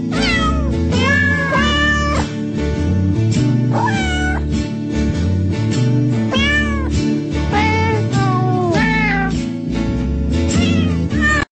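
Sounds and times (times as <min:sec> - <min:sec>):
cat meowing: 0:00.0 - 0:02.3, 0:03.7 - 0:04.5, 0:06.3 - 0:09.4, 0:10.5 - 0:11.4
music playing: 0:00.0 - 0:11.4.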